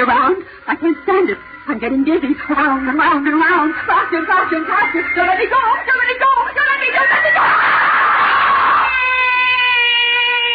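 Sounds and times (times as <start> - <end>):
speech: 0.0 - 8.0
person screaming in a high-pitched wail: 7.4 - 10.5.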